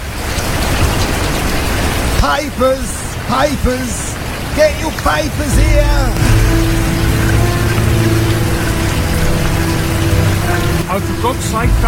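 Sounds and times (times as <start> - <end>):
steady dense rain pouring down: 0.0 - 11.8
speech: 2.2 - 6.3, 10.9 - 11.8.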